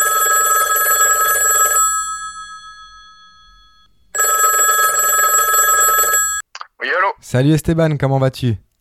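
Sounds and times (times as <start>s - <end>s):
telephone ringing on an outgoing call: 0.0s - 6.5s
speech: 7.3s - 8.6s.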